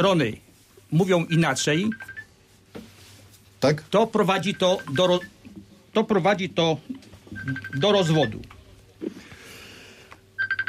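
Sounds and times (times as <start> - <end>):
speech: 0.0 - 2.1, 3.6 - 5.4, 6.0 - 9.1
telephone ringing with short high electronic beeps in a radio studio: 1.8 - 2.4, 4.4 - 5.4, 7.3 - 8.5, 10.4 - 10.6.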